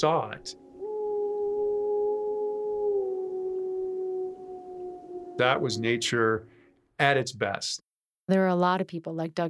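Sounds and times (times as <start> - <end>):
speech: 0.0 - 0.6, 5.4 - 9.4
wolf howling: 0.1 - 6.6.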